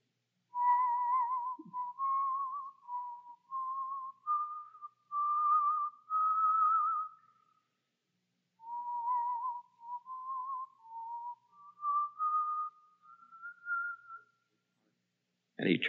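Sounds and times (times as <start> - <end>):
man whistling a slow steady tune: 0.6 - 7.5, 8.6 - 14.4
speech: 15.6 - 15.8.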